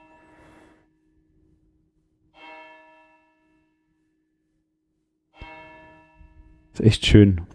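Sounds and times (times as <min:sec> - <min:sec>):
church bells ringing in slow measured strikes: 0:02.3 - 0:03.4, 0:05.4 - 0:06.8
speech: 0:06.8 - 0:07.5.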